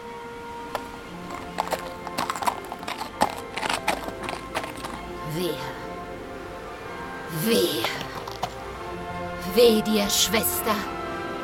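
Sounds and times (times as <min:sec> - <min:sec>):
horse hooves clip-clopping as a rider mounts and leaves: 0:00.7 - 0:05.8, 0:07.7 - 0:08.7
person's voice in a staged opera drama: 0:05.2 - 0:05.9, 0:07.3 - 0:08.2, 0:09.4 - 0:10.9
speech: 0:07.4 - 0:08.0, 0:09.6 - 0:11.0.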